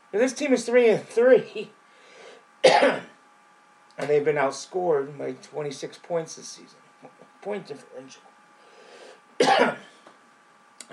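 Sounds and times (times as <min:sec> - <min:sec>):
speech: 0:00.1 - 0:01.8, 0:02.6 - 0:03.1, 0:04.0 - 0:08.3, 0:09.4 - 0:09.9
sharp raspy cough: 0:02.6 - 0:03.2, 0:09.4 - 0:10.0.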